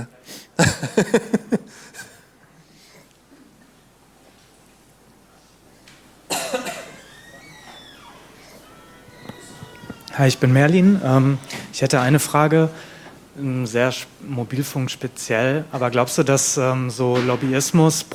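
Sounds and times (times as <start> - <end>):
speech: 0.0 - 1.4, 10.2 - 18.1
laughter: 0.0 - 2.3
harsh raspy coughing fit: 6.3 - 7.0.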